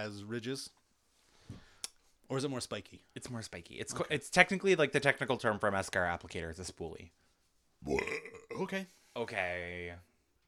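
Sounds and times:
speech: 0.0s - 0.8s, 2.3s - 7.2s, 7.8s - 10.1s
person burping: 7.8s - 8.8s.

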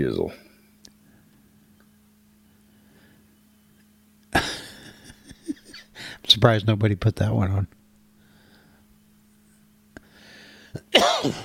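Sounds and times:
speech: 0.0s - 0.5s, 6.3s - 7.8s, 10.9s - 11.4s
laughter: 4.4s - 6.0s
harsh cough into a microphone: 10.8s - 11.4s.

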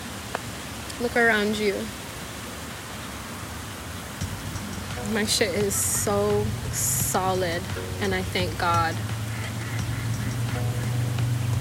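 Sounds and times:
speech: 1.0s - 2.0s, 5.1s - 9.1s
steady low rumbling hum: 4.2s - 11.5s
geese honking: 5.1s - 11.5s.

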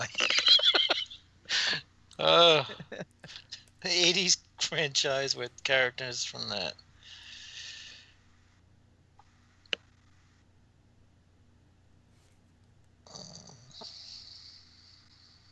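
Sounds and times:
laughter: 0.0s - 8.0s
quiet breathing: 1.0s - 15.4s
speech: 2.2s - 3.1s, 3.8s - 6.8s
rasping snores: 13.1s - 15.4s.

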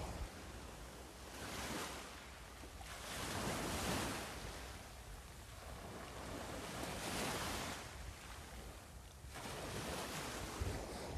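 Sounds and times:
gusty wind buffeting the microphone: 0.0s - 11.1s
ocean waves breaking on shore: 0.0s - 11.1s.

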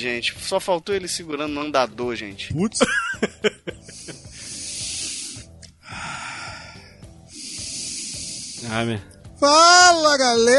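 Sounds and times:
speech: 0.0s - 3.7s, 8.7s - 10.5s
laughter: 2.8s - 4.4s
loud deep breathing, mostly exhaling: 3.8s - 8.7s.

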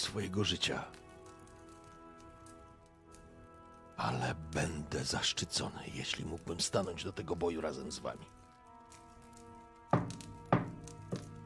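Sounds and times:
speech: 0.0s - 1.0s, 4.0s - 8.4s
heavy wooden thumps from a staff striking: 10.0s - 11.4s.

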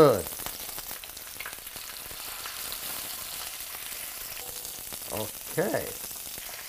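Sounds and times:
speech: 0.0s - 0.3s, 5.6s - 6.0s
skin frying in a pan on medium heat: 0.0s - 6.6s.

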